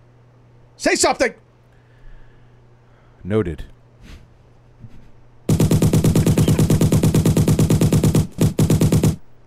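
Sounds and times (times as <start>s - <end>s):
speech: 0.8s - 1.4s, 3.2s - 3.7s
toy Tommy gun firing rapid rattling bursts: 5.5s - 9.2s.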